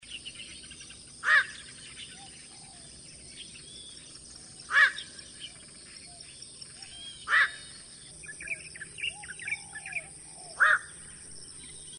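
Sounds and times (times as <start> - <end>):
faint bird chirps: 0.0 - 11.9
black-crowned night heron croaking barks: 1.2 - 1.9, 4.6 - 5.4, 6.9 - 7.8, 9.2 - 11.1.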